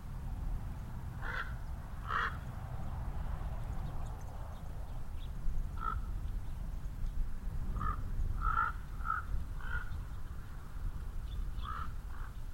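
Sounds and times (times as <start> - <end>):
cars passing at Elizabeth Lake: 0.0 - 12.4
common raven croaking at Elizabeth Lake: 1.2 - 2.4, 5.8 - 6.1, 7.8 - 9.9.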